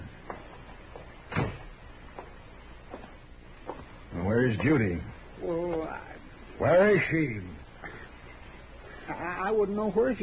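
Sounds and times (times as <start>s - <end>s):
low hissy background: 0.0s - 10.2s
door shutting: 1.3s - 1.8s
speech: 4.4s - 6.0s, 6.6s - 7.6s, 9.1s - 10.2s.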